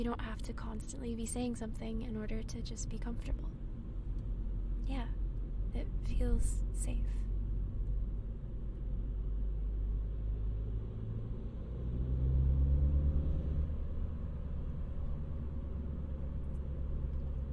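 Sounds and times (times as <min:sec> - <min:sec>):
speech: 0:00.0 - 0:03.7, 0:04.9 - 0:05.1, 0:05.7 - 0:07.3
car engine: 0:00.0 - 0:17.5
car tires rolling over pavement heard from inside a moving vehicle: 0:02.8 - 0:17.5.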